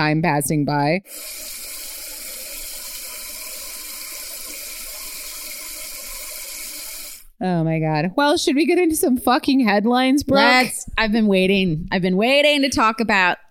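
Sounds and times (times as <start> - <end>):
speech: 0.0 - 1.7, 7.4 - 13.4
faucet running at full flow into a sink: 1.1 - 7.3.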